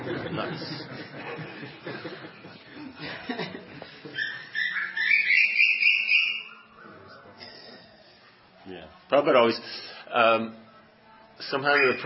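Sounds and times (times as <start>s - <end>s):
laughter: 0.0s - 4.6s
speech: 0.1s - 2.0s, 9.1s - 10.6s, 11.4s - 12.0s
cuckoo calling: 4.2s - 7.0s.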